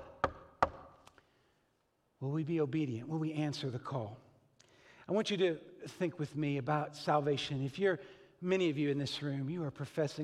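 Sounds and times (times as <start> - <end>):
knocks on a hard wooden surface: 0.0 - 0.9
speech: 2.2 - 4.2, 5.1 - 10.2.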